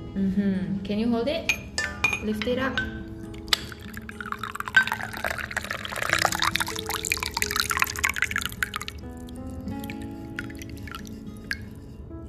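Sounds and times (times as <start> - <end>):
speech: 0.2 - 1.6, 2.2 - 3.0
light clinks of glass: 1.5 - 9.0, 9.7 - 11.9
coffee pouring into a glass jar: 3.4 - 11.8.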